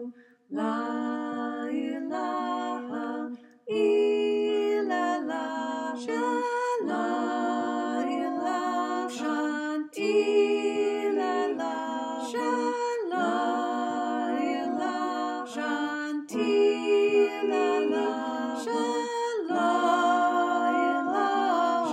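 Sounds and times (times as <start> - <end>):
choir chanting all parts: 0.6 - 21.9.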